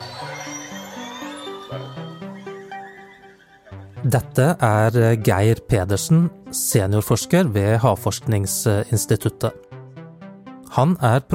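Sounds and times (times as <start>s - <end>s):
underwater animal whistles: 0.0s - 3.8s
speech: 4.0s - 9.7s, 10.8s - 11.3s.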